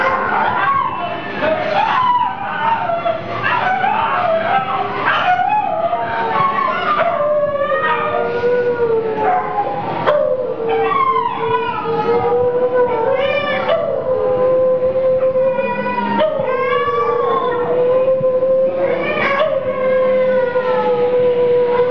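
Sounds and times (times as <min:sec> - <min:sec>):
irritated domestic dogs howling at a hotel in Laxman Jhula, Rishikesh, India: 0:00.0 - 0:21.8.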